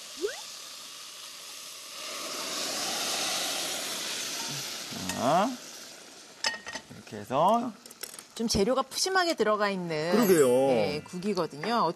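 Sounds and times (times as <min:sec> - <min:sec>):
anchovy stock poured through a strainer into a pot with fried tofu: 0:01.1 - 0:05.8
speech: 0:04.5 - 0:05.7, 0:07.1 - 0:11.9.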